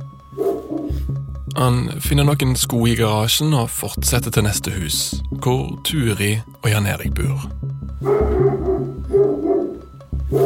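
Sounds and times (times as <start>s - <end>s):
pulsing low rhythmic thump: 0.0s - 10.4s
household dog barking to raise the alarm: 0.3s - 1.0s, 8.0s - 10.4s
speech: 1.5s - 8.6s.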